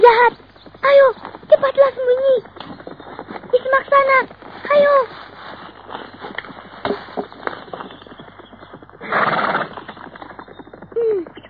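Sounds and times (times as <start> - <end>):
horse hooves clip-clopping on hard ground: 0.0 - 11.4
horse letting out a loud breathy whinny: 9.0 - 10.0.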